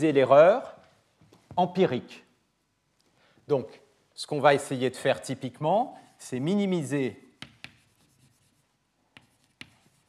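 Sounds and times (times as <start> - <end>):
speech: 0.0 - 0.8, 1.6 - 2.2, 3.5 - 7.2
writing on a board during a lecture: 7.3 - 10.0.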